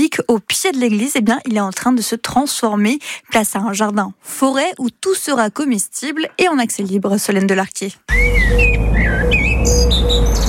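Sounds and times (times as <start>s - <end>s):
speech: 0.1s - 10.4s
blackbird singing in a public garden: 8.1s - 10.4s.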